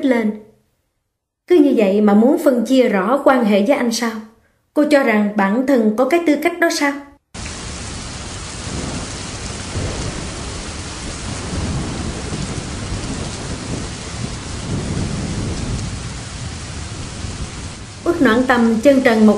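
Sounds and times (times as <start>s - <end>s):
speech: 0.0s - 0.5s, 1.5s - 7.1s, 18.2s - 19.3s
low rolling thunder rumbles: 7.4s - 19.2s
heavy pouring rain in a thunderstorm with wind: 7.4s - 19.3s.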